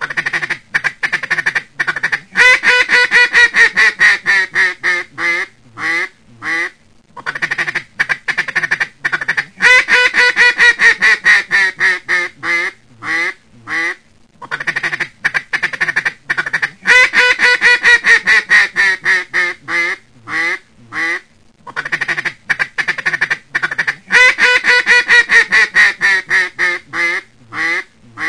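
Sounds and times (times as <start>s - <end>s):
ducks: 0.0s - 28.2s.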